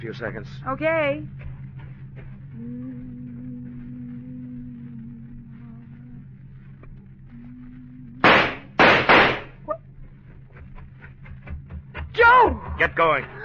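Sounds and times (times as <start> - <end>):
speech: 0.0 - 1.5, 13.0 - 13.4
car engine left running: 0.0 - 13.4
gunshots: 8.2 - 9.6.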